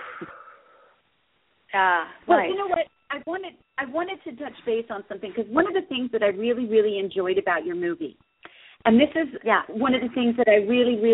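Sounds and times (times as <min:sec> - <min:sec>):
deep breath in: 0:00.0 - 0:01.0, 0:08.4 - 0:08.8
speech: 0:00.2 - 0:00.4, 0:01.7 - 0:08.2, 0:08.8 - 0:11.1.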